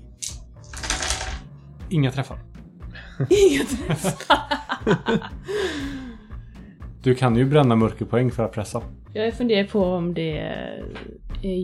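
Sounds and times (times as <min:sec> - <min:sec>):
nine dice rolled onto a hard surface: 0:00.6 - 0:01.4
speech: 0:01.9 - 0:02.5, 0:03.2 - 0:05.8, 0:07.0 - 0:11.6
laughter: 0:03.0 - 0:05.9.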